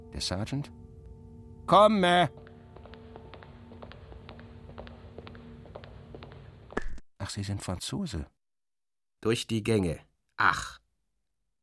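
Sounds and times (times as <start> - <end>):
speech: 0.2 - 0.8, 1.7 - 2.4, 7.3 - 8.4, 9.2 - 10.8
slow evenly spaced male footsteps outside: 2.1 - 7.0.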